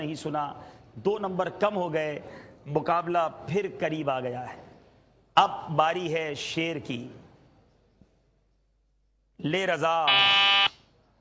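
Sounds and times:
speech: 0.0s - 4.7s, 5.4s - 7.2s, 9.4s - 10.6s
quiz contestant's buzzer: 10.1s - 10.8s.

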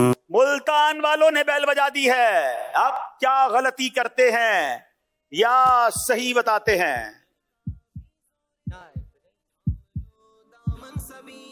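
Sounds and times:
speech: 0.0s - 7.2s
deep punchy heartbeat sound effect: 5.6s - 7.1s, 7.7s - 8.1s, 8.7s - 9.1s, 9.7s - 10.1s, 10.7s - 11.2s.

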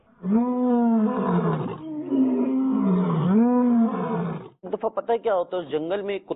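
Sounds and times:
speech: 0.2s - 0.5s, 4.8s - 6.3s
lion roaring: 0.2s - 4.6s.

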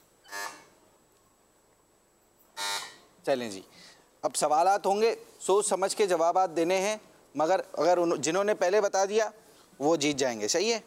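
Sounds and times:
quiz contestant electronic buzzer blasts: 0.2s - 0.8s, 2.6s - 3.1s
speech: 3.2s - 10.8s.

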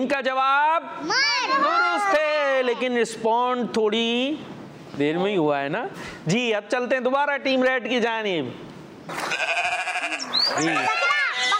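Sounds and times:
speech: 0.0s - 9.5s, 10.5s - 11.0s
goat bleating: 9.2s - 11.5s.

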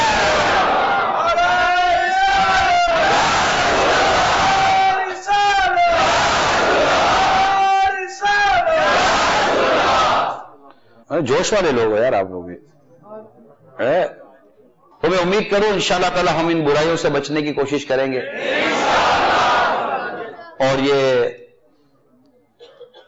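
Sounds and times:
large crowd chanting a religious slogan in unison: 0.0s - 5.2s, 5.8s - 7.6s, 8.6s - 10.6s, 18.3s - 20.4s
speech: 11.2s - 12.7s, 13.8s - 14.2s, 15.1s - 19.2s, 20.6s - 21.4s.

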